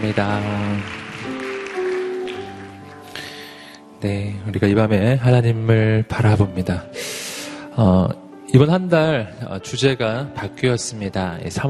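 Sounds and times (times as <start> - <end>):
speech: 0.0 - 1.0, 4.0 - 7.2, 7.8 - 11.6
audience applauding: 0.0 - 3.6.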